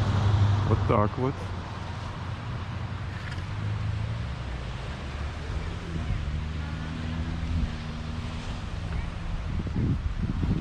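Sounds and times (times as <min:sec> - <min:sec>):
speech: 0:00.7 - 0:01.6
calm ocean washing against the shore on a sunny day: 0:01.3 - 0:10.5
wind rushing across the microphone: 0:05.1 - 0:10.5.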